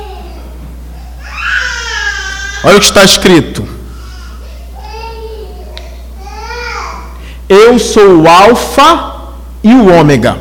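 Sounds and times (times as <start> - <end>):
baby crying in a high-pitched wail: 0.0 - 3.0, 3.9 - 7.1
low hum: 0.0 - 10.3
speech: 2.6 - 3.8, 7.7 - 10.3.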